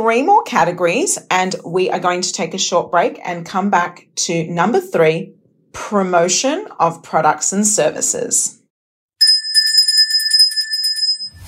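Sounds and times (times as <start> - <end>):
speech: 0.0 - 8.6
small high-pitched bell ringing rapidly: 9.2 - 11.4.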